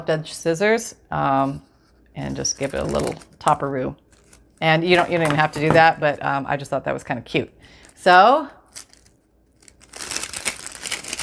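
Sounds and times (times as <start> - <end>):
speech: 0.0 - 4.0, 4.6 - 8.6
small handmade crinkly bag crinkling: 2.4 - 5.7, 8.7 - 11.2.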